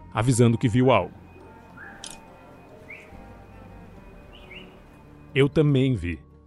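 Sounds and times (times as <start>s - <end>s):
speech: 0.2s - 1.2s, 5.3s - 6.3s
faint human whistles from across the street: 1.1s - 5.4s.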